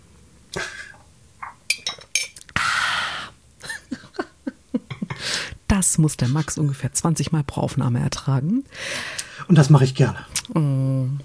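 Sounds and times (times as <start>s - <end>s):
glass clinking: 1.4s - 2.4s
speech: 5.8s - 11.2s.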